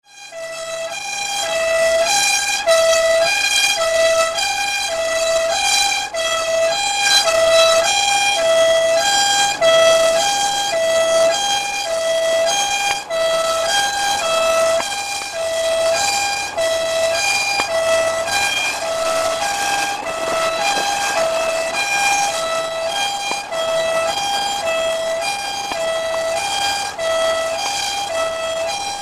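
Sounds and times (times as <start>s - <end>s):
police siren: 0.0s - 29.0s.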